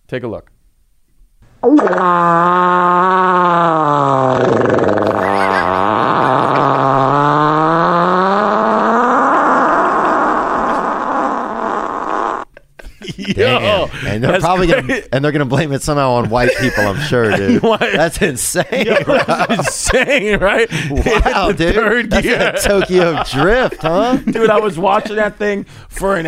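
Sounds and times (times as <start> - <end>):
speech: 0.1 - 0.6, 1.6 - 5.1, 14.2 - 26.2
long loud buzzing fart: 1.6 - 12.6
laughter: 5.1 - 6.7, 12.6 - 15.1, 16.1 - 25.4.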